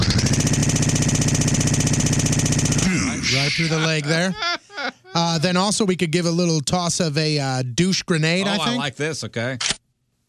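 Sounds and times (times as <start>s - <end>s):
chainsaw sound effect engine drone: 0.0s - 3.5s
laughter: 2.9s - 5.6s
speech: 3.6s - 4.5s, 5.2s - 9.8s.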